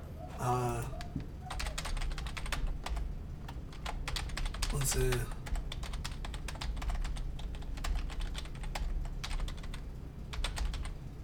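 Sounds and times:
rapid typing on a computer keyboard: 0:01.0 - 0:11.0
speech: 0:04.8 - 0:05.4.

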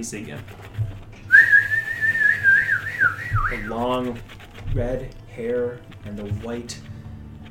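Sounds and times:
speech: 0:00.0 - 0:00.8, 0:03.5 - 0:06.9
person whistling a sustained high note: 0:01.3 - 0:03.8.

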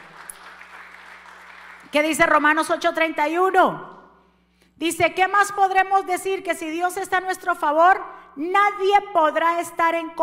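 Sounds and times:
audience applauding: 0:00.0 - 0:01.9
speech: 0:01.9 - 0:03.9, 0:04.8 - 0:10.2.

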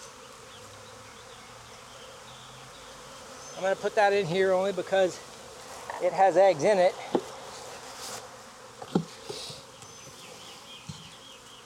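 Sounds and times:
honeybees buzzing around an open hive: 0:00.0 - 0:11.6
speech: 0:03.6 - 0:05.3, 0:06.0 - 0:07.3.

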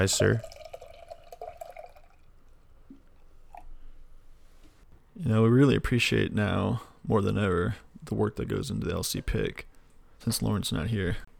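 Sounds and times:
speech: 0:00.0 - 0:00.5, 0:05.2 - 0:11.3
beer pouring into a glass: 0:00.0 - 0:03.7
soft drips: 0:00.0 - 0:04.9.

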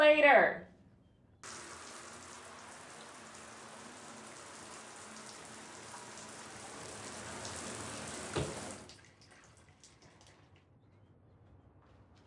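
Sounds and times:
speech: 0:00.2 - 0:00.7
shower running: 0:01.4 - 0:10.4.

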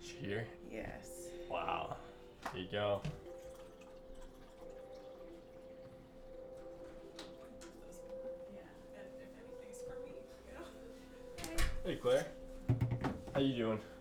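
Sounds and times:
low constant hum: 0:00.0 - 0:14.0
speech: 0:00.2 - 0:03.3, 0:11.8 - 0:12.4, 0:13.4 - 0:14.0
water being poured for tea: 0:02.5 - 0:07.8.

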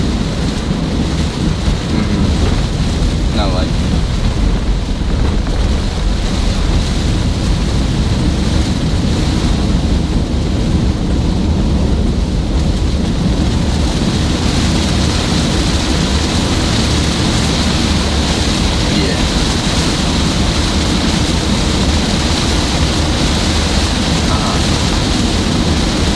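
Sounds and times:
steady heavy rain pouring: 0:00.0 - 0:26.1
faint voice: 0:01.9 - 0:02.5, 0:24.3 - 0:24.7.

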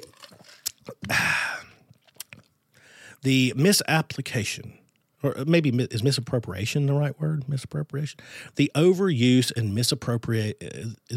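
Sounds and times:
slurping sip of cold brew coffee: 0:00.0 - 0:01.2
mouth clicks: 0:00.0 - 0:02.6
swallowing: 0:00.0 - 0:02.6
speech: 0:03.2 - 0:11.1.

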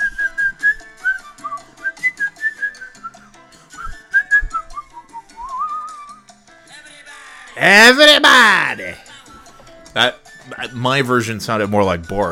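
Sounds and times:
person whistling a lilting melody: 0:00.0 - 0:06.3
speech: 0:07.6 - 0:08.6, 0:10.0 - 0:12.3.

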